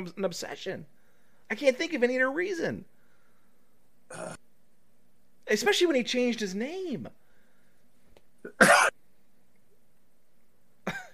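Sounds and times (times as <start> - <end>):
speech: 0.0 - 2.9, 4.1 - 4.4, 5.5 - 7.2, 8.4 - 8.8
harsh coughing: 8.4 - 9.0, 10.8 - 11.1.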